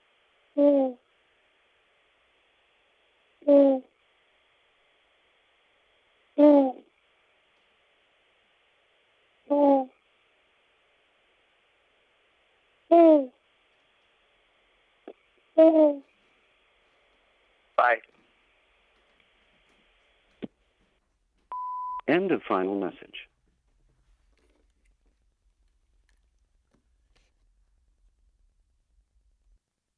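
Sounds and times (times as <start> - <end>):
person imitating owl hoots: 0.6 - 1.0, 3.4 - 3.9, 6.4 - 6.9, 9.5 - 10.0, 12.9 - 13.4, 15.6 - 16.1
speech: 15.6 - 16.1, 17.8 - 18.1, 22.1 - 23.3.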